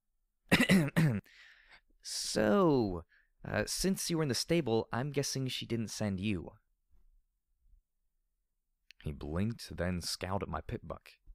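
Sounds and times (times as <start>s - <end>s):
person clearing throat: 0.5s - 1.2s
speech: 2.0s - 6.6s, 9.0s - 11.2s.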